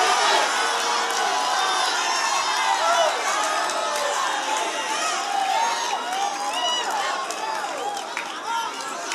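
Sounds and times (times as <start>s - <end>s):
church audience shouting and cheering in praise: 0.0s - 9.1s.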